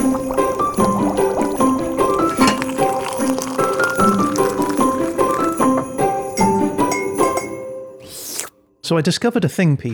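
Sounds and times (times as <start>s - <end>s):
hot water poured over loose tea leaves: 0.0s - 6.6s, 8.0s - 8.5s
light tinkling ringing tones from the cup: 0.0s - 7.6s
speech: 8.9s - 9.9s.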